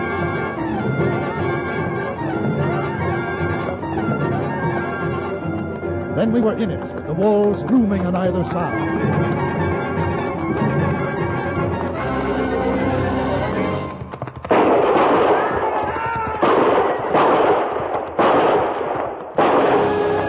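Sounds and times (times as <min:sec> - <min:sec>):
music: 0:00.0 - 0:14.4, 0:19.5 - 0:20.2
speech: 0:06.2 - 0:09.6
gunfire volleys in a canyon during a frontier battle: 0:14.5 - 0:20.2.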